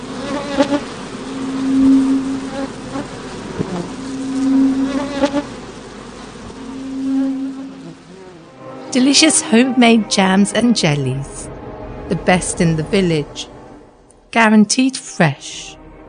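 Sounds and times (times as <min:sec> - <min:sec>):
loud swarm of bees buzzing in a room: 0:00.0 - 0:10.5
speech: 0:00.6 - 0:00.9, 0:09.0 - 0:11.5, 0:12.1 - 0:13.5, 0:14.3 - 0:15.8.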